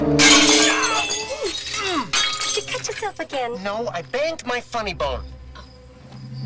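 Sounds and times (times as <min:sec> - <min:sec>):
garage window glass shattering as it is broken in: 0:00.2 - 0:03.3
glass fragments tinkling: 0:00.2 - 0:03.4
speech: 0:03.2 - 0:05.4.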